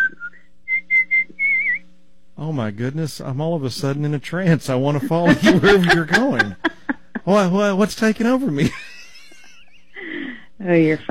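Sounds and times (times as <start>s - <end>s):
person whistling a tune: 0.0s - 1.8s
speech: 2.4s - 8.8s, 10.7s - 11.0s
laughter: 4.8s - 10.3s.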